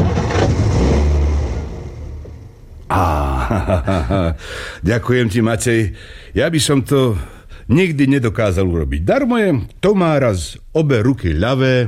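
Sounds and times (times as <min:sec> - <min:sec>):
car engine starting and revving: 0:00.0 - 0:02.8
sudden burst of noise: 0:00.0 - 0:02.8
laughter: 0:02.9 - 0:04.7
speech: 0:03.7 - 0:11.8.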